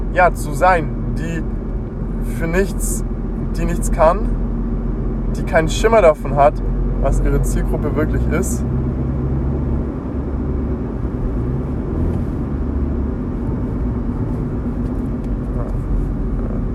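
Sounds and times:
road and engine rumble inside a moving car: 0.0 - 16.7
speech: 0.1 - 1.6, 2.3 - 4.4, 5.4 - 8.8.

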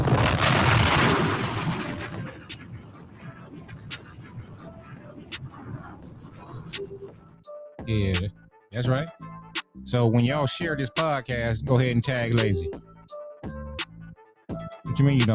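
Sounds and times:
bomb-drop sound effect with loud rumbling blast: 0.0 - 7.2
many sharp crackling bursts: 0.0 - 7.3
speech: 7.9 - 13.6, 15.0 - 15.3.

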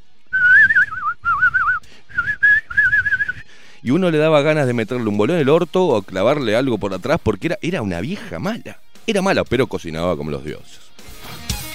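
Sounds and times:
human whistle with strong wavering vibrato: 0.3 - 3.5
speech: 3.8 - 10.8.

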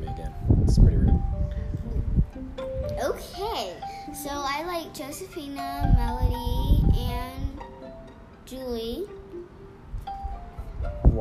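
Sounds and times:
gusty outdoor wind buffeting the microphone: 0.0 - 3.5, 5.7 - 7.6, 9.9 - 11.1
speech: 3.0 - 6.5, 8.5 - 9.2.

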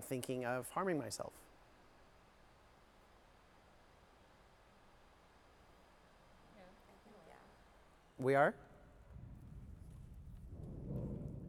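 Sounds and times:
speech: 0.0 - 1.5, 8.2 - 8.7
low rolling thunder: 9.1 - 11.4.

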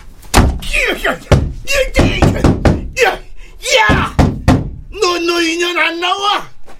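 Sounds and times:
door being kicked with heavy booming thuds: 0.3 - 3.2, 3.8 - 4.9
speech: 0.8 - 4.1, 5.2 - 6.5.

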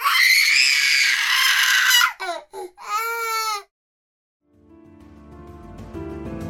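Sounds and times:
baby crying: 0.0 - 3.7.

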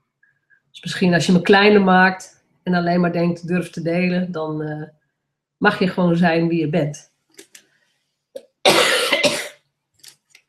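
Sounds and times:
speech: 0.8 - 5.0, 5.6 - 7.1
person with a winter virus coughing harshly: 8.7 - 9.6.

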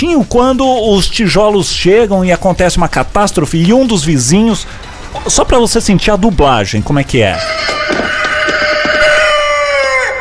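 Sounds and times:
speech: 0.0 - 8.1
rooster crowing: 7.4 - 10.1.

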